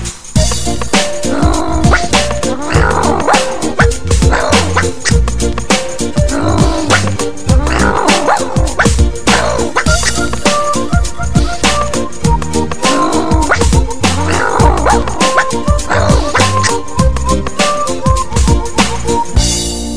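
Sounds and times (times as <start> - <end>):
loud steady backing music: 0.0 - 19.9
voices imitating a dog barking: 1.3 - 5.2, 6.3 - 10.4, 12.8 - 16.9.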